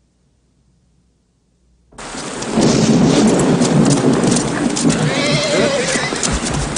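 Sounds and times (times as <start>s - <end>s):
heavy rain in a thunderstorm: 2.0s - 6.7s
rumbling thunder: 2.0s - 6.7s
horse whinnying: 4.8s - 6.7s.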